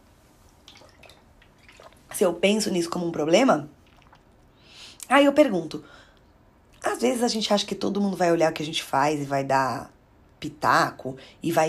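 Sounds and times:
person sipping a drink of water: 0:00.6 - 0:02.2, 0:03.8 - 0:04.6
speech: 0:02.2 - 0:03.8, 0:05.1 - 0:06.0, 0:07.0 - 0:11.6.

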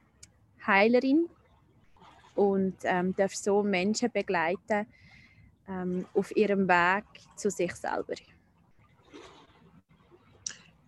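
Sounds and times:
small lake waves lapping against the shore at Interlaken: 0:00.1 - 0:10.8
speech: 0:00.7 - 0:01.4, 0:02.4 - 0:05.1, 0:05.7 - 0:08.4
sharper little splash of lake water: 0:01.2 - 0:10.8.

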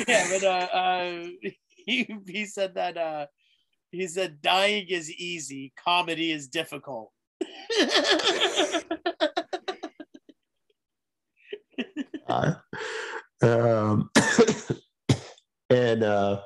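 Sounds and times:
speech: 0:00.0 - 0:09.2, 0:11.9 - 0:14.8, 0:15.7 - 0:16.4
laughter: 0:07.6 - 0:10.3
person coughing: 0:13.8 - 0:15.4.

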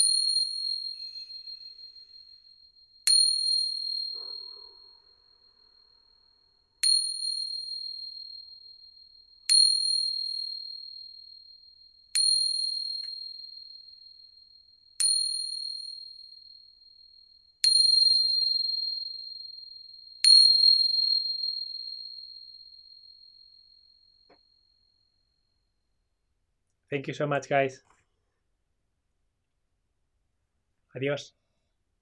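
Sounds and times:
high clear chime ringing: 0:00.0 - 0:08.6
speech: 0:26.9 - 0:27.9, 0:31.0 - 0:31.4.

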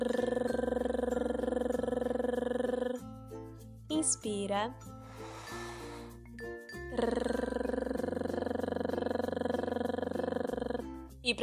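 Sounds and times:
breathy vocal lead-in: 0:00.0 - 0:03.1, 0:05.1 - 0:06.2, 0:06.9 - 0:11.0
person doing a rolled tongue trill vocal warm-up: 0:00.0 - 0:03.2, 0:06.8 - 0:11.2
speech: 0:04.0 - 0:04.9, 0:07.0 - 0:07.5, 0:11.2 - 0:11.4.

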